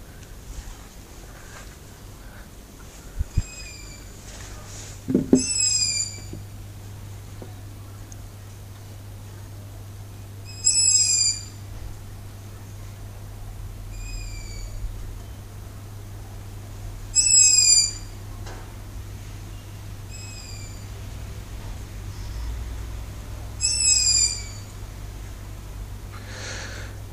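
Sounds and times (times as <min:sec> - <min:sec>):
steady low hum: 0:00.0 - 0:27.1
owl trilling calls outdoors at night: 0:03.3 - 0:04.2, 0:05.3 - 0:06.4, 0:10.4 - 0:11.6, 0:13.9 - 0:14.8, 0:17.1 - 0:18.1, 0:20.1 - 0:20.9, 0:23.6 - 0:24.8.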